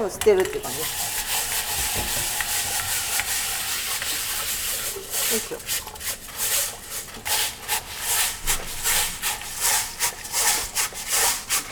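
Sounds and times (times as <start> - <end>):
speech: 0.0 - 1.1, 5.3 - 6.0
rice grains being rubbed while washing: 0.7 - 11.7.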